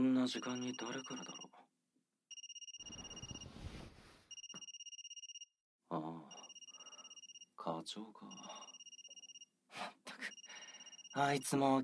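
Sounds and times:
speech: 0:00.0 - 0:01.5, 0:07.6 - 0:08.6, 0:11.1 - 0:11.8
mobile phone ringing: 0:00.3 - 0:01.5, 0:02.3 - 0:03.6, 0:04.3 - 0:05.5, 0:06.3 - 0:07.5, 0:08.3 - 0:09.5, 0:10.2 - 0:11.6.

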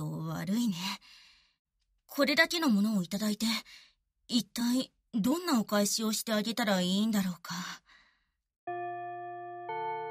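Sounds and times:
speech: 0:00.4 - 0:01.0, 0:02.2 - 0:07.8
school bell chime ringing: 0:08.7 - 0:10.1.

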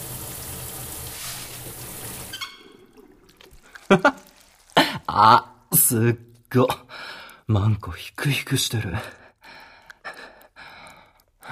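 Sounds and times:
shower water spraying: 0:00.0 - 0:05.2
speech: 0:03.9 - 0:04.2, 0:05.2 - 0:06.8, 0:07.5 - 0:09.2.

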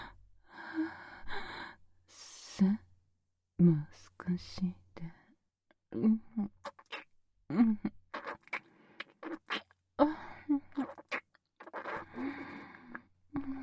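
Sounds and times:
speech: 0:02.6 - 0:02.8, 0:03.6 - 0:05.2, 0:05.9 - 0:06.6, 0:07.5 - 0:08.0
wet lip smacks and kissing: 0:06.6 - 0:07.1, 0:08.1 - 0:09.8, 0:10.7 - 0:12.6.

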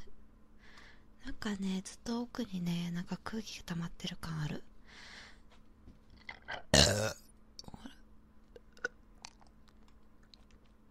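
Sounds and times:
speech: 0:01.4 - 0:04.7
short loud burp: 0:06.3 - 0:07.8
faint wet mouth clicks: 0:08.5 - 0:10.8.

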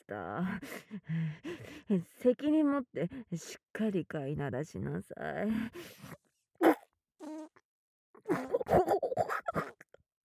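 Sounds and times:
speech: 0:00.1 - 0:06.2
short sputtering fart: 0:06.6 - 0:07.6, 0:08.2 - 0:08.6.

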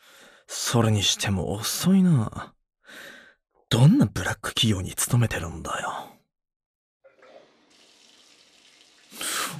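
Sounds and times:
speech: 0:00.7 - 0:03.1, 0:03.7 - 0:06.1
shower water running in a hissing spray: 0:07.1 - 0:09.5.

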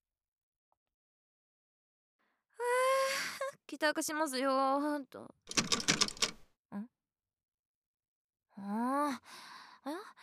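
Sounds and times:
speech: 0:03.7 - 0:05.8, 0:06.7 - 0:07.0, 0:08.6 - 0:10.2
keys rattling and scraping in a door lock: 0:05.5 - 0:06.4.

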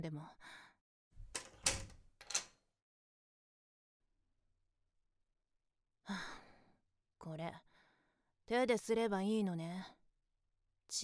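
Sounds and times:
speech: 0:00.0 - 0:00.7, 0:06.1 - 0:06.4, 0:07.2 - 0:07.7, 0:08.5 - 0:10.0, 0:10.9 - 0:11.0
front door lock clicks and clunks: 0:01.2 - 0:02.6.

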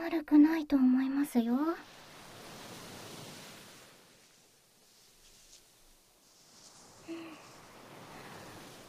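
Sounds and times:
speech: 0:00.6 - 0:02.0
ocean waves washing over sand: 0:01.8 - 0:08.8.

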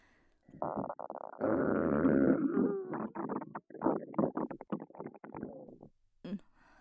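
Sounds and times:
long loud fart: 0:00.6 - 0:05.9.

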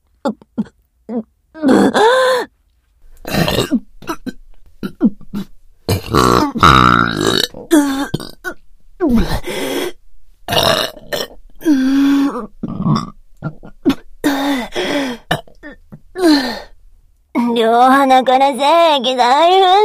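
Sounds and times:
speech: 0:00.2 - 0:02.5, 0:18.2 - 0:19.8
person burping: 0:00.3 - 0:02.2, 0:03.2 - 0:09.5, 0:10.5 - 0:16.7.

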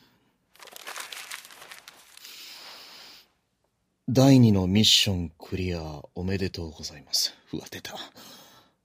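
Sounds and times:
paper wrapper crinkling off a plastic drink bottle: 0:00.5 - 0:02.8
speech: 0:04.1 - 0:08.4.

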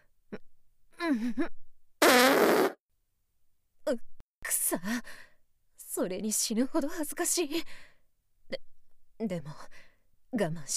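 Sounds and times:
speech: 0:01.1 - 0:01.6, 0:03.9 - 0:04.1, 0:04.7 - 0:05.2, 0:06.0 - 0:10.7
farts: 0:02.0 - 0:02.8.

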